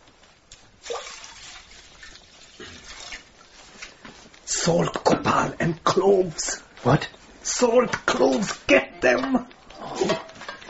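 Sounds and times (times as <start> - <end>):
water pouring into a vessel to boil: 0.8 - 3.5
speech: 4.6 - 9.5.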